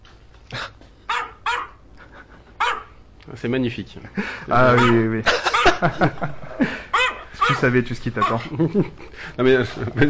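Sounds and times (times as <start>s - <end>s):
small dog yapping: 1.1s - 1.8s, 2.6s - 2.9s, 4.7s - 5.8s, 7.0s - 7.6s
laughter: 1.9s - 2.7s, 4.1s - 10.0s
speech: 3.3s - 6.8s, 7.5s - 10.0s.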